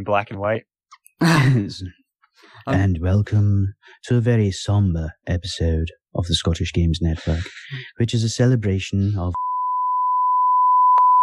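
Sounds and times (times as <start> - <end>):
speech: 0.0 - 9.5
censor bleep tone: 9.4 - 11.2.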